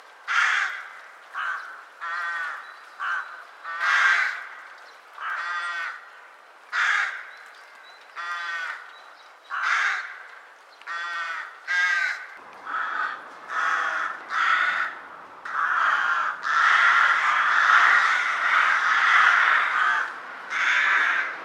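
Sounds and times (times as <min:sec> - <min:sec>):
rook Corvus frugilegus calling: 0:00.3 - 0:07.5, 0:08.1 - 0:21.4.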